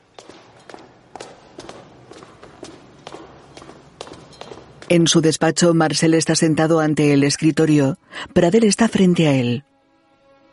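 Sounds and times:
footsteps of two people climbing a staircase: 0.0s - 5.2s
speech: 4.9s - 9.7s.

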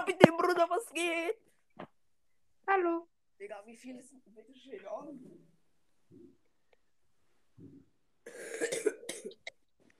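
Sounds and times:
speech: 0.0s - 2.0s, 2.7s - 6.4s
person coughing with raspy throat noise: 8.3s - 9.5s.

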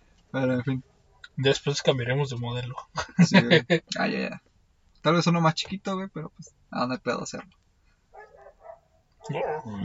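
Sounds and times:
speech: 0.3s - 7.6s, 9.2s - 9.8s
laughter: 2.8s - 3.9s
dogs barking: 8.1s - 9.8s.

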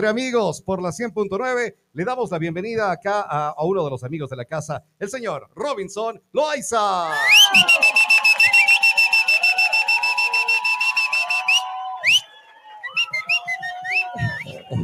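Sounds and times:
speech: 0.0s - 8.2s
person whistling a warbling trill: 7.3s - 12.3s, 12.9s - 14.8s
laughter: 14.0s - 14.8s.

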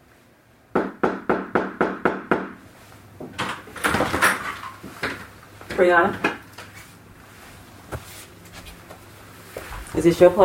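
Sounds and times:
police knocking loud and firm on an apartment door: 0.7s - 2.6s
speech: 5.8s - 6.3s, 10.0s - 10.4s
shuffling: 6.6s - 10.4s.

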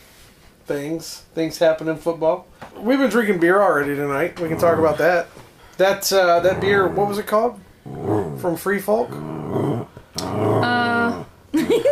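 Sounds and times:
speech: 0.7s - 7.7s, 8.4s - 9.9s
angry female dog growling: 4.3s - 5.3s, 6.1s - 11.4s.

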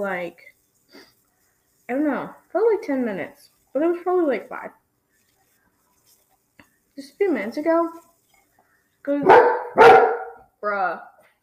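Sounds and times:
speech: 0.0s - 1.1s, 1.9s - 4.8s, 7.0s - 8.1s, 9.0s - 11.1s
dog barking: 9.2s - 10.5s.

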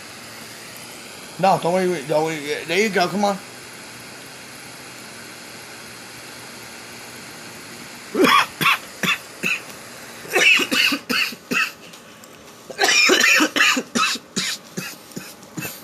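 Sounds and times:
speech: 1.4s - 3.5s
person having a coughing fit: 8.2s - 9.7s, 10.3s - 11.8s, 12.7s - 15.8s.

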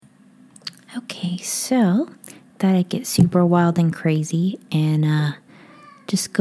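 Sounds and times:
speech: 0.9s - 5.4s, 6.1s - 6.3s
pet cat meowing: 5.7s - 6.1s.

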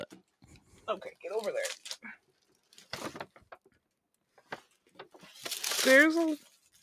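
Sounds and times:
speech: 0.9s - 1.9s, 5.9s - 6.5s
paper crinkling as a big gift bag is unwrapped: 1.1s - 3.6s, 4.4s - 6.8s.

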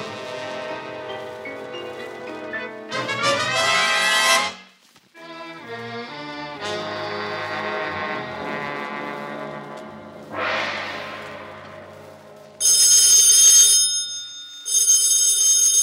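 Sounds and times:
orchestral music: 0.0s - 4.6s, 5.2s - 12.6s
old-fashioned telephone bell ringing: 12.6s - 15.8s.

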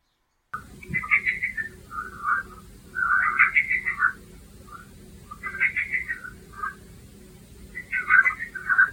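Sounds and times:
steady low hum: 0.5s - 8.9s
chorus of many frogs calling: 0.6s - 7.0s, 7.6s - 8.9s.

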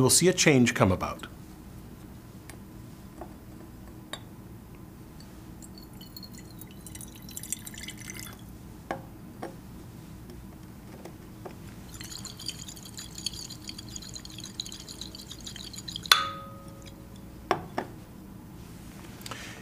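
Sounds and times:
speech: 0.0s - 1.4s
low hum: 0.0s - 19.6s
bright ringing clink of glass: 5.2s - 8.4s, 11.9s - 17.7s
lime water dribbling into a glass flask: 5.2s - 8.4s, 11.8s - 17.3s.

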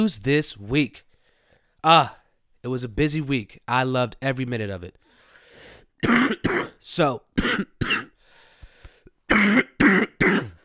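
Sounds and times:
speech: 0.0s - 1.1s, 1.8s - 5.0s, 6.0s - 8.1s, 9.3s - 10.5s
person with a cold clearing throat: 6.0s - 6.8s, 7.4s - 8.2s, 9.3s - 10.6s
person with a cold coughing: 6.0s - 6.8s, 7.4s - 8.2s, 9.3s - 10.6s.

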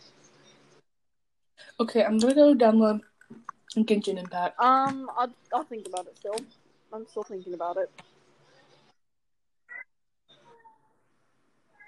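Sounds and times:
speech: 1.8s - 8.1s
cat meowing: 10.4s - 10.9s.

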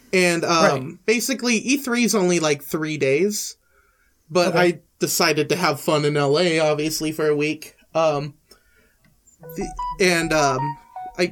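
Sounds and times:
speech: 0.1s - 3.6s, 4.3s - 8.4s, 9.4s - 11.2s
brief voice: 0.6s - 0.9s
mobile phone ringing with a melodic tune: 9.4s - 11.2s.

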